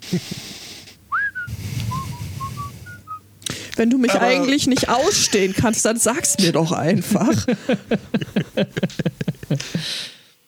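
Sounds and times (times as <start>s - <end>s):
speech: 0.1s - 0.6s, 3.8s - 10.2s
low rumble: 0.4s - 9.6s
person whistling: 1.1s - 3.2s
laughter: 4.1s - 10.0s.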